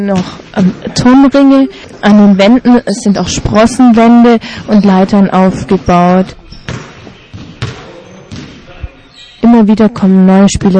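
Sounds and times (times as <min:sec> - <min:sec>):
speech: 0:00.0 - 0:06.4, 0:09.5 - 0:10.7
low busy background: 0:00.0 - 0:10.7
basketball bouncing and dribbling on a gym floor: 0:03.2 - 0:08.6.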